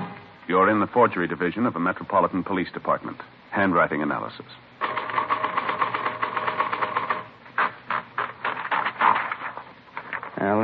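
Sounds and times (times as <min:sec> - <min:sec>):
speech: 0:00.7 - 0:04.7, 0:10.4 - 0:10.6
typewriter typing: 0:04.8 - 0:10.4.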